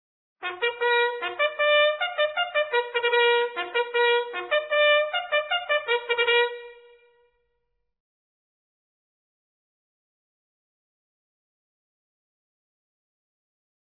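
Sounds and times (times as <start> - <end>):
bugle call: 0.4 - 7.2.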